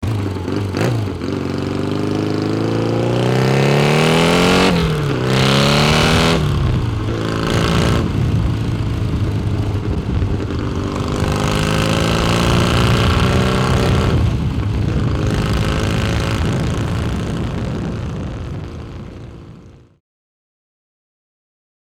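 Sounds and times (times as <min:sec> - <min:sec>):
motorcycle leaving: 0:00.0 - 0:19.9.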